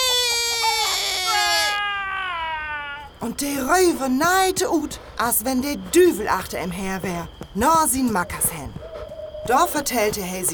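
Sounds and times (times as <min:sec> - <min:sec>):
person imitating a rooster crow: 0:00.6 - 0:03.1
speech: 0:03.2 - 0:08.5, 0:09.4 - 0:10.5.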